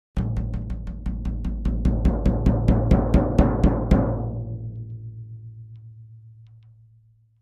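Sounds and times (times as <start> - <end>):
low tom drum hits in C: 0.2 - 5.9.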